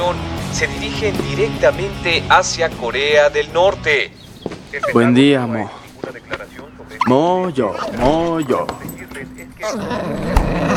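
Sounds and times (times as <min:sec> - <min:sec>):
speech: 0:00.1 - 0:06.4, 0:07.0 - 0:08.9, 0:09.6 - 0:10.7
dog growling and grumbling: 0:09.6 - 0:10.7.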